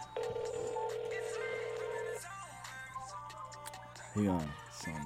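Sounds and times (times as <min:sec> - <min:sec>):
phone call ringing tone through a line: 0:00.1 - 0:02.3
speech: 0:04.1 - 0:05.0.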